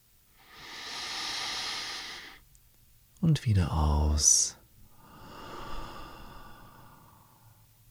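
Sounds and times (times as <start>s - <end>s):
deep inhalation: 0.4s - 2.4s, 4.9s - 7.6s
speech: 3.2s - 4.6s.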